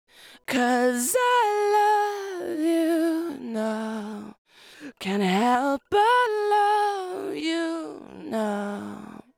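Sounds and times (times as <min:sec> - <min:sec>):
person singing lead vocal in a chorus: 0:00.2 - 0:09.3.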